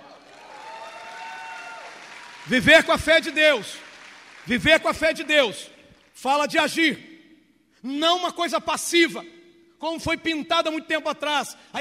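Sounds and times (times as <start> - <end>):
audience applauding in a large room: 0.0 - 5.7
speech: 2.4 - 7.1, 7.8 - 11.8.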